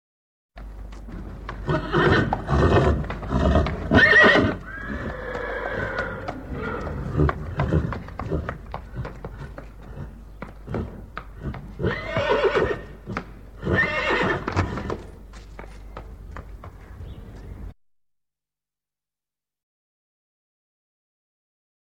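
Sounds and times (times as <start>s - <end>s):
horse hooves walking: 0.6s - 17.8s
horse neighing: 1.6s - 15.1s.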